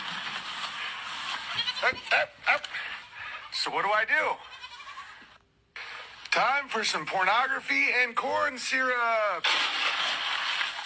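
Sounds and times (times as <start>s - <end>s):
hiss: 0.0s - 7.0s
goats bleating: 1.2s - 3.7s, 4.3s - 5.3s
speech: 1.8s - 2.9s, 3.5s - 4.6s, 6.3s - 9.8s.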